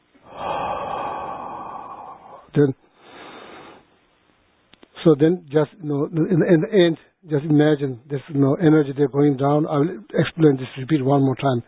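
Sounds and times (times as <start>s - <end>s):
sharp brief snort-like intake of breath: 0.2s - 3.8s
long steady exhale through the mouth: 0.3s - 3.8s
speech: 2.6s - 2.8s, 5.0s - 11.6s.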